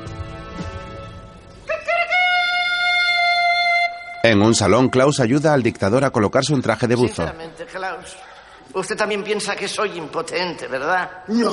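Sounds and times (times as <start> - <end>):
man imitating a rooster crowing beside a palace at dawn: 1.7 - 4.3
speech: 4.3 - 11.5.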